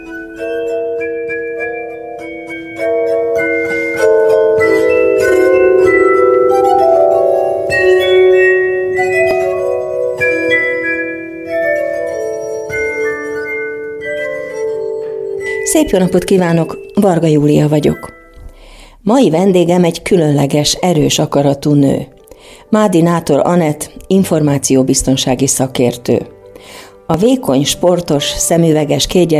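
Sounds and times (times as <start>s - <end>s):
cold glassy bell chimes: 0.0s - 18.7s
speech: 15.8s - 18.2s, 19.0s - 22.1s, 22.7s - 26.3s, 27.1s - 29.3s.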